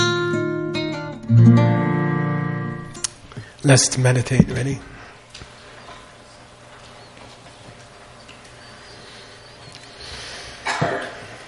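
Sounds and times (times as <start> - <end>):
quiet room's low hiss: 0.8 - 10.0
speech: 3.6 - 5.0
person coughing: 10.6 - 11.3.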